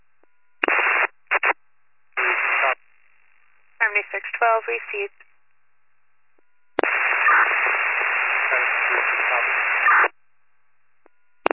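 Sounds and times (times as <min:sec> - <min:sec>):
loud band-limited radio static: 0:00.6 - 0:01.6, 0:02.2 - 0:02.8, 0:03.8 - 0:05.1, 0:06.8 - 0:10.1
speech: 0:04.4 - 0:05.2.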